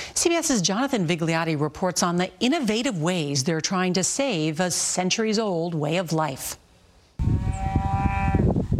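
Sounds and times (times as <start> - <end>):
speech: 0.2 - 6.6
cow mooing on a cattle ranch outside Paso Robles California: 7.2 - 8.5.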